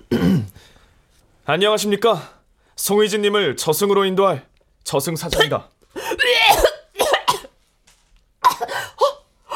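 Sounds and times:
hard harsh coughing: 0:00.0 - 0:00.6, 0:05.3 - 0:07.6, 0:08.4 - 0:09.2
speech: 0:01.5 - 0:05.7.

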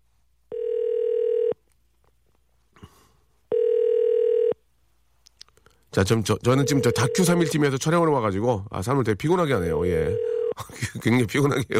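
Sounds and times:
telephone ringback tones: 0:00.5 - 0:01.6, 0:03.5 - 0:04.6, 0:06.6 - 0:07.6, 0:10.0 - 0:10.5
speech: 0:06.0 - 0:11.7
laughter: 0:10.6 - 0:11.7.

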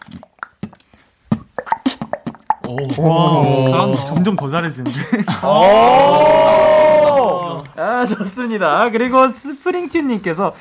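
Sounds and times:
beatbox tick-tock rhythm made by mouth with clicks, tongue pops and thumps: 0:00.0 - 0:05.5
speech: 0:02.7 - 0:06.6, 0:07.8 - 0:10.5.

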